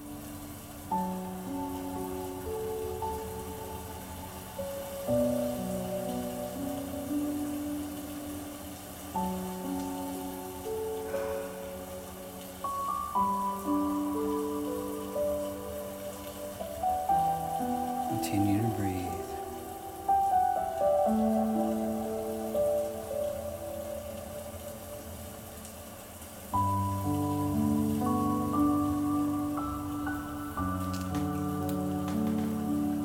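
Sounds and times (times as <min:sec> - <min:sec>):
soft steady rain pattering: 0:00.0 - 0:33.0.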